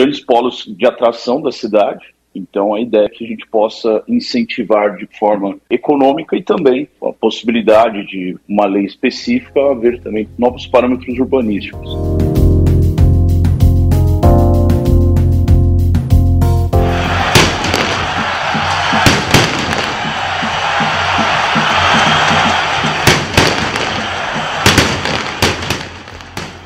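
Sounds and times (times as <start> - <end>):
speech: 0.2 - 12.3
music: 9.2 - 26.6
stadium crowd roaring: 16.8 - 26.6
firecrackers and fireworks banging at a stadium: 17.2 - 20.2, 22.1 - 26.6.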